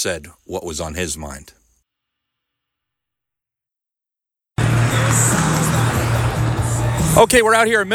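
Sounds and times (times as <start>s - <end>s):
speech: 0.0s - 1.6s, 7.2s - 7.9s
cars driving by on a busy road: 4.6s - 7.2s.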